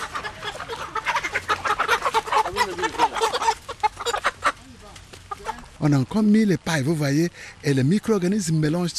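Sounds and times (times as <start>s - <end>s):
hens clucking beneath a raised stilted coop with a wire-mesh floor: 0.0s - 6.0s
speech: 5.8s - 8.9s.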